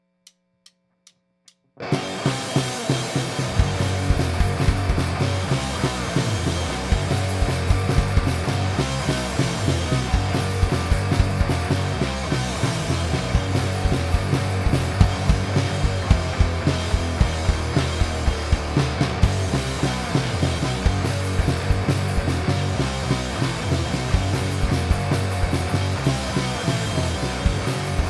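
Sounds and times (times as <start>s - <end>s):
bass playing: 1.8s - 28.0s.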